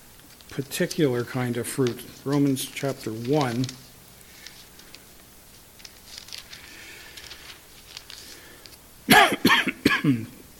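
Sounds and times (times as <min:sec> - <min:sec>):
speech: 0:00.5 - 0:03.8, 0:10.1 - 0:10.4
person coughing harshly: 0:09.1 - 0:10.4.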